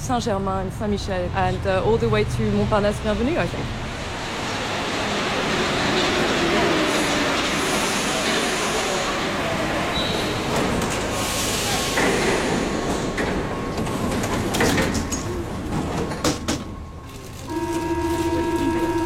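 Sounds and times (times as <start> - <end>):
Paris metro train on Line 4 rumbling underground: 0.0 - 19.0
speech: 0.1 - 3.8
metro train squeals: 9.9 - 10.6.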